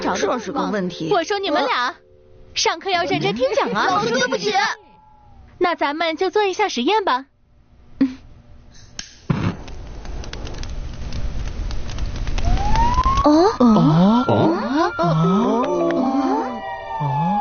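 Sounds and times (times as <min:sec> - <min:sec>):
speech: 0:00.1 - 0:02.0, 0:02.6 - 0:04.8, 0:05.6 - 0:07.3
fire truck siren wailing: 0:12.4 - 0:17.3.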